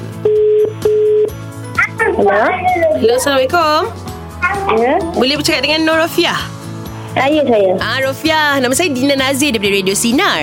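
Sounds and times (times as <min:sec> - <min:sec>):
telephone line tone through the handset: 0:00.2 - 0:01.3
speech: 0:02.2 - 0:10.4.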